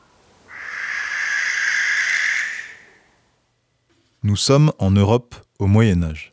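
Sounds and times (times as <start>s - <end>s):
barn owl screech: 0.0s - 3.1s
speech: 4.2s - 6.3s.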